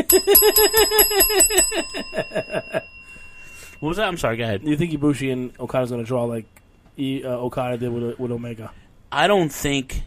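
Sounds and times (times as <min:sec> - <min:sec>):
small bell ringing: 0:00.0 - 0:06.3
speech: 0:00.1 - 0:02.4, 0:03.8 - 0:10.0.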